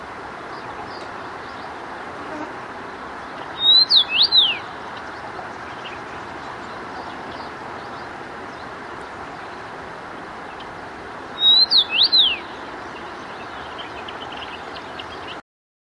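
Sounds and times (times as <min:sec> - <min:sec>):
steady background noise: 0:00.0 - 0:15.4
common rosefinch singing a brief whistled phrase: 0:03.6 - 0:04.8, 0:11.4 - 0:12.5.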